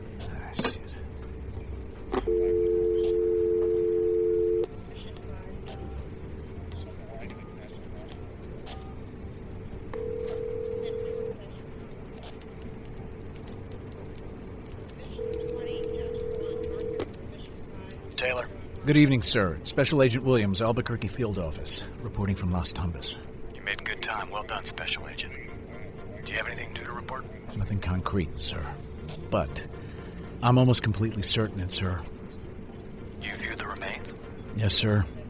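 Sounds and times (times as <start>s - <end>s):
low murmuring background: 0.0s - 35.2s
desk telephone line ringing with a steady electronic tone: 2.3s - 4.6s, 10.0s - 11.4s, 15.2s - 17.0s
speech: 18.9s - 23.3s, 24.3s - 25.6s, 26.4s - 29.7s, 30.4s - 32.1s, 34.6s - 35.1s.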